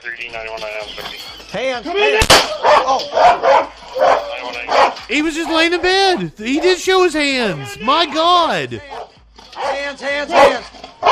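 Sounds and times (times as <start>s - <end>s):
speech: 0.0s - 9.0s, 9.9s - 10.7s
dog barking: 2.6s - 5.0s, 9.6s - 11.0s
raised voices: 5.1s - 8.8s.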